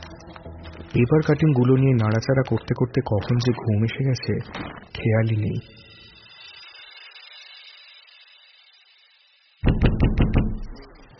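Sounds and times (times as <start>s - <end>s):
speech: 0.9s - 5.8s
knocking on a bedroom door: 9.7s - 10.7s.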